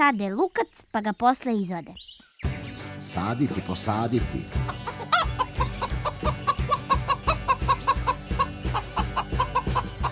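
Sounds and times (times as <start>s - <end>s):
speech: 0.0s - 2.1s, 3.0s - 5.0s
low rhythmic background: 2.4s - 10.1s
hen clucking: 4.5s - 10.1s.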